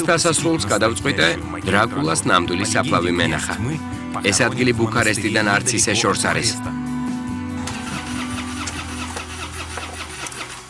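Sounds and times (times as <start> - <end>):
speech: 0.0 - 6.8
cheap car engine cranking in a failed attempt to start: 7.5 - 10.6.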